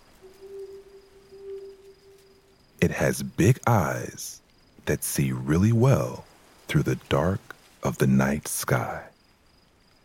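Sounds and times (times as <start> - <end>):
owl hooting from a mossy branch in a tall tree at night: 0.0 - 3.2
soft hiss: 0.0 - 10.0
speech: 2.8 - 9.1.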